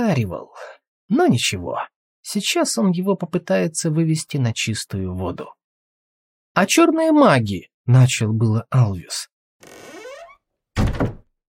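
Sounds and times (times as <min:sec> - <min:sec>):
speech: 0:00.0 - 0:05.6, 0:06.6 - 0:09.9
door creaking: 0:09.6 - 0:11.3.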